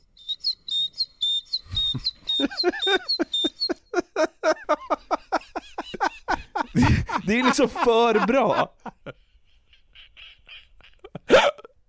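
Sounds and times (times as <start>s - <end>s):
man's voice mimicking great tit song: 0.0s - 3.8s
laughter: 1.7s - 11.8s
speech: 7.3s - 8.8s.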